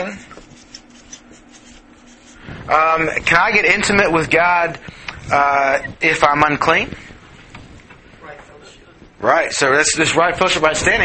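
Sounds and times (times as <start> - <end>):
writing with scratchy rubbing strokes: 0.0 - 2.5
speech: 2.7 - 7.0, 9.2 - 11.0.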